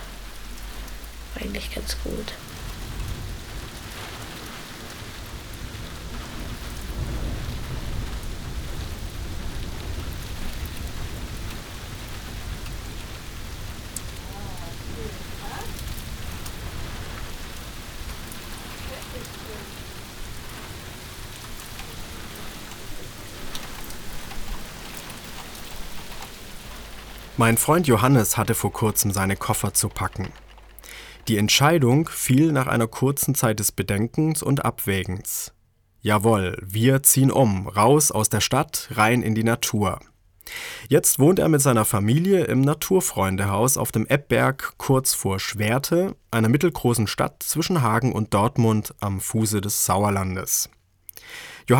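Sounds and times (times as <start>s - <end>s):
thunder rumble: 0.0s - 31.3s
heavy rain pouring on surfaces: 0.0s - 35.4s, 36.0s - 50.6s, 51.2s - 51.7s
speech: 1.4s - 2.5s, 27.4s - 30.5s, 31.2s - 51.7s.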